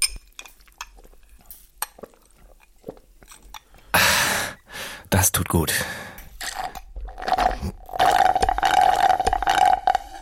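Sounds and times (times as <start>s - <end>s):
speech: 5.1s - 6.1s
slurping through a metal straw at the bottom of an almost empty glass with ice cubes: 6.4s - 10.2s.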